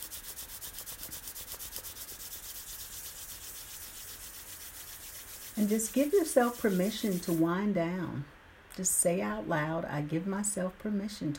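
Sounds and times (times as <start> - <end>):
hands rubbing together: 0.0 - 7.5
speech: 5.6 - 11.3.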